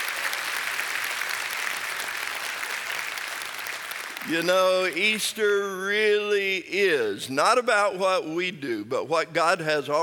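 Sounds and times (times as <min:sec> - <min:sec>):
church audience applause at an Easter service: 0:00.0 - 0:05.1
speech: 0:04.3 - 0:10.0.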